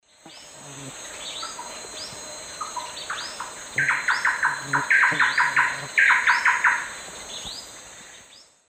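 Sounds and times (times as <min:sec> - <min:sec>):
Campylorhynchus turdinus duet in the Eastern Lowlands of S. America: 0:00.2 - 0:06.9
Campylorhynchus turdinus calls in the Eastern Lowlands of S. America: 0:00.2 - 0:08.5.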